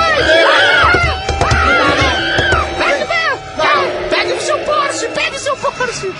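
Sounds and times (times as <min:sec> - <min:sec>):
horse neighing passed off as dinosaur: 0:00.2 - 0:05.4
dense rumbling background: 0:01.1 - 0:06.0.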